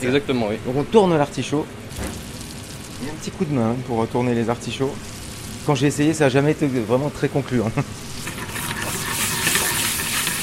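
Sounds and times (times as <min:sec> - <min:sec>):
speech: 0:00.0 - 0:01.8, 0:03.0 - 0:08.0
butter foaming in a frying pan: 0:01.9 - 0:03.6, 0:04.2 - 0:06.8, 0:07.9 - 0:10.4.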